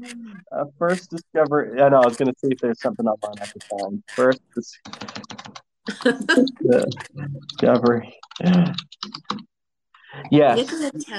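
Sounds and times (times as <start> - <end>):
speech: 0.0 - 5.2, 5.8 - 9.5, 10.1 - 11.1
computer keyboard keystrokes: 2.0 - 9.5.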